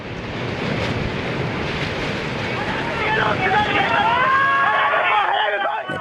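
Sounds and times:
tsunami waves surging onto the coast: 0:00.0 - 0:05.9
wind buffeting the microphone: 0:00.0 - 0:05.9.

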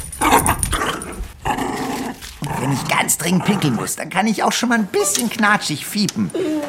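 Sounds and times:
dog growling playfully: 0:00.2 - 0:03.9
speech: 0:02.7 - 0:06.6.

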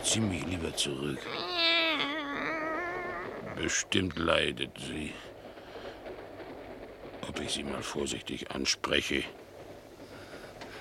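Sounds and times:
speech: 0:00.1 - 0:01.7, 0:03.6 - 0:05.3, 0:07.2 - 0:09.4
cat in a basket yowling angrily: 0:01.2 - 0:03.8.

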